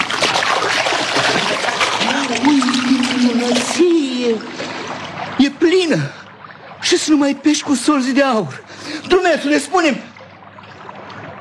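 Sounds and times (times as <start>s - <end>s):
fishing net thrown into water, splashing and churning: 0.0s - 5.3s
speech: 4.2s - 4.6s, 5.7s - 6.2s, 6.9s - 10.1s.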